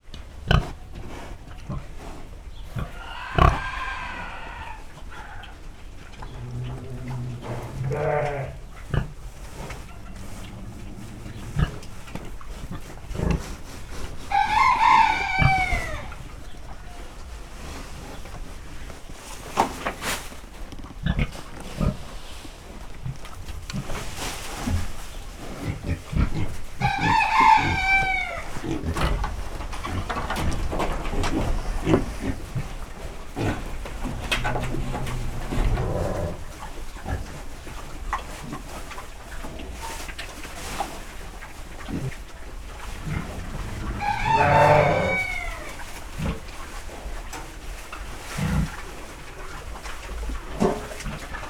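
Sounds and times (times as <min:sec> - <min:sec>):
pig in a farmyard: 0:00.1 - 0:51.4
sheep in a farmyard: 0:00.5 - 0:05.6, 0:06.2 - 0:17.8, 0:23.0 - 0:38.8, 0:42.8 - 0:47.0
rooster in a farmyard: 0:02.8 - 0:05.6, 0:14.2 - 0:17.3, 0:26.8 - 0:28.8, 0:43.1 - 0:46.0.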